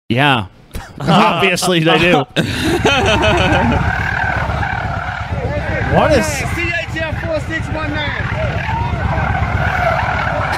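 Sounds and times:
speech: 0.1 - 4.2, 5.9 - 6.6
laughter: 1.0 - 4.6, 10.3 - 10.5
car engine roaring while doing donuts in the road: 2.4 - 10.5
car tires squealing and skidding while doing donuts in the road: 2.8 - 10.5.

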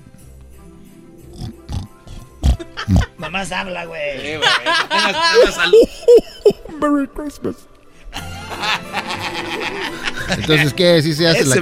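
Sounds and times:
person imitating a pig with nasal oinking snorts: 1.3 - 3.2
laughter: 2.4 - 6.8, 8.1 - 11.6
speech: 2.9 - 7.7, 9.7 - 11.6.

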